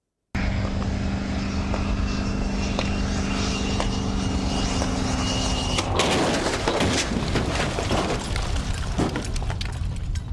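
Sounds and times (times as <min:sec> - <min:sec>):
steady humming vehicle whine: 0:00.4 - 0:10.2
crunching metal: 0:05.4 - 0:10.3
scraping: 0:05.7 - 0:10.2
electric pickup truck crashing into guardrail barrier: 0:05.9 - 0:09.5
scattered clattering debris: 0:05.9 - 0:10.3.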